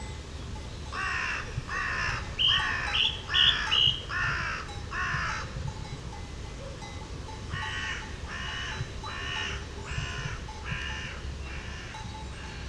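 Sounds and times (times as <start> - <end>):
carrion crow Corvus corone giving short harsh caws: 1.0 - 5.5, 7.6 - 12.6.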